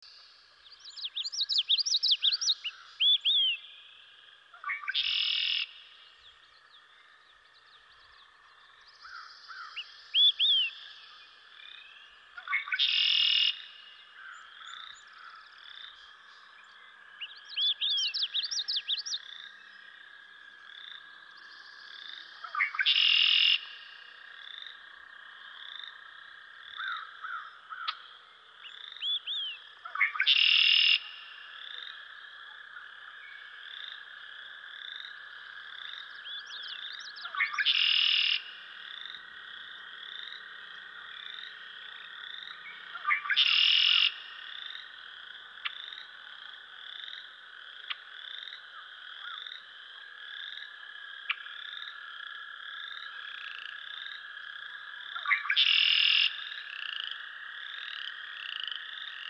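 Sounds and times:
Red-winged Blackbird calling: 0.7s - 3.8s, 4.5s - 5.8s, 9.0s - 10.9s, 12.4s - 15.5s, 17.2s - 19.3s, 22.4s - 23.8s, 26.8s - 31.2s, 36.2s - 38.6s, 42.7s - 44.2s, 55.2s - 56.4s.

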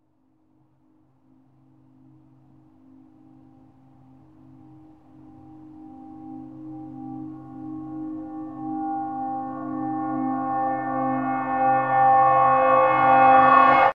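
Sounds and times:
reversed long church bell stinger: 3.8s - 13.9s.

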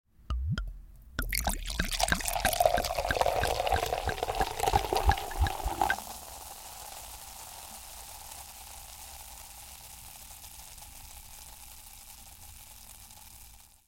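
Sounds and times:
soda chugging as it pours into a glass: 1.2s - 6.7s
soda fizzing in a glass: 1.2s - 10.0s.

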